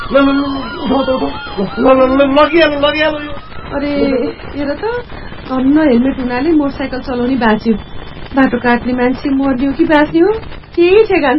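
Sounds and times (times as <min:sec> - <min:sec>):
ambulance siren wailing at a road accident scene: 0:00.0 - 0:07.8
speech: 0:00.1 - 0:11.3.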